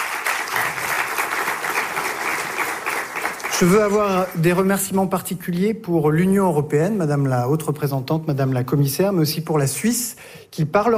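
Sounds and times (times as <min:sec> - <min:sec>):
sustained applause from a sizable audience: 0:00.0 - 0:04.8
speech: 0:03.6 - 0:10.9.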